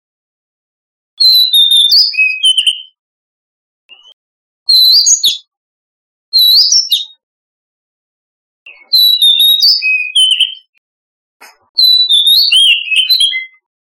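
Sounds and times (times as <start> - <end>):
Oriental magpie-robin singing: 1.2 - 3.0, 3.9 - 5.5, 6.4 - 7.2, 8.7 - 10.8, 11.4 - 13.7.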